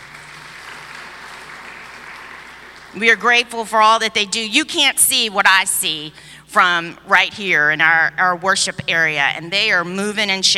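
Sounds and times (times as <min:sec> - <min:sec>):
congregation applause at a church worship service: 0:00.0 - 0:03.0
speech: 0:02.9 - 0:10.5.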